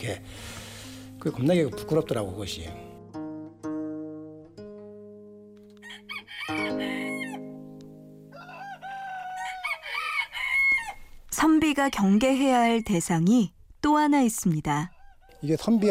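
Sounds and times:
speech: 0.0 - 0.6, 1.2 - 2.9, 11.8 - 15.8
rooster crowing loudly: 5.8 - 7.5, 8.3 - 11.1, 14.9 - 15.8.

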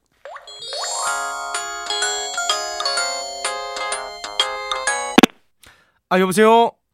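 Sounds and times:
phone ringtone while an AI assistant connects a call: 0.3 - 5.2
speech: 6.1 - 6.8.

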